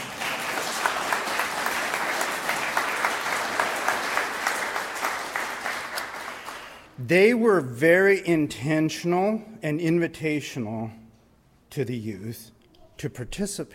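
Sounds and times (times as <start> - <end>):
audience clapping: 0.0 - 6.9
speech: 7.1 - 11.0, 11.7 - 13.7.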